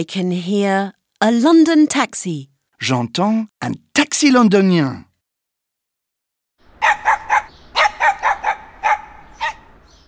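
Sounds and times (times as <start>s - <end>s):
speech: 0.0s - 5.1s
dog barking in short sharp yaps: 6.8s - 9.8s.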